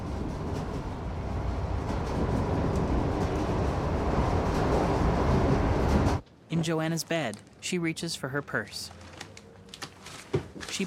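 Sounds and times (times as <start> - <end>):
subway train running with a low rattling rumble: 0.0 - 6.2
speech: 6.6 - 9.1.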